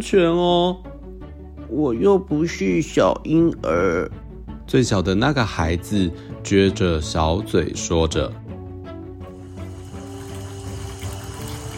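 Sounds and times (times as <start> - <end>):
speech: 0.0 - 0.9, 1.7 - 8.4
hot water filling a bathtub: 9.2 - 11.7.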